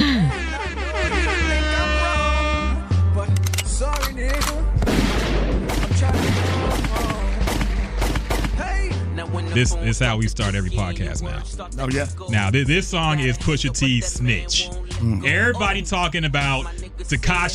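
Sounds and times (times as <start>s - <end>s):
blaring horn-like blast: 0.0s - 3.1s
heavy bass: 0.0s - 3.9s, 4.7s - 17.2s
rapid gunshot sound effects: 4.8s - 8.9s
speech: 9.6s - 17.5s.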